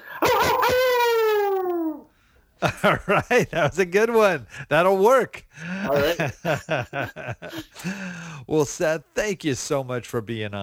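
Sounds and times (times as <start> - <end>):
person imitating a hound dog's howl: 0.1 - 2.1
speech: 2.6 - 10.6
laughter: 5.9 - 7.9.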